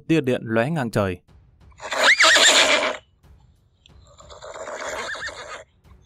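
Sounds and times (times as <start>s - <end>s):
speech: 0.0s - 1.9s
low rumble: 1.2s - 4.7s
mare neighing while rearing on grass: 1.8s - 3.0s, 4.1s - 5.6s.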